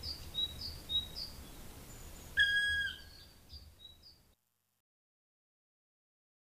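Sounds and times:
other birds twittering with short high chirps: 0.0 - 4.2
black woodpecker giving a drawn-out mournful whistled note: 2.4 - 3.2.

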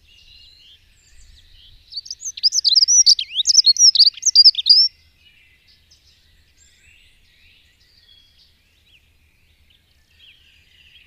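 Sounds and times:
dunnock song of high whistled and squeaky notes: 2.0 - 4.9.

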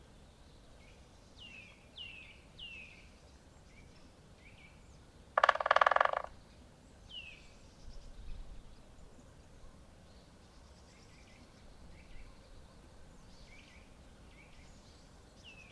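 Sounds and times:
quiet outdoor noise: 0.0 - 15.7
Great spotted woodpecker drumming: 5.4 - 6.3.

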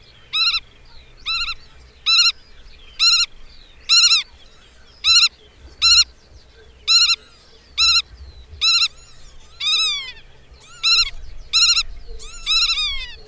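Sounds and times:
Black-tailed godwit calling: 0.0 - 13.2
faint low rumble: 0.0 - 13.2.

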